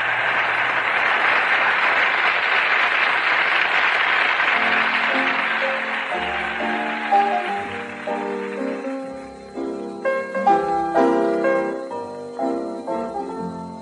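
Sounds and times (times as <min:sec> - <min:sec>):
large cricket crowd cheering and applauding: 0:00.0 - 0:09.6
musical tones: 0:04.6 - 0:13.8.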